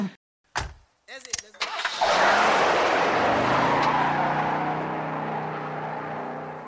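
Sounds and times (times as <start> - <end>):
car engine cranking and failing to start: 1.6 - 6.6.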